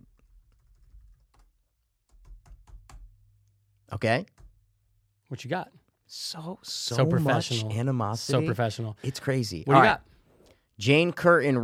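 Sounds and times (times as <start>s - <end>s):
fingers typing on a computer keyboard: 0.0s - 3.3s, 4.3s - 4.6s
speech: 3.9s - 4.4s, 5.3s - 10.1s, 10.8s - 11.6s.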